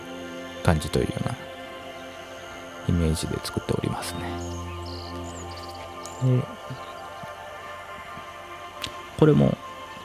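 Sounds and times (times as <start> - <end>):
speech: 0.7 - 1.5, 2.9 - 5.4, 6.2 - 6.9, 9.2 - 9.6
analog synthesizer hum from a Korg Volca Keys: 0.7 - 8.6.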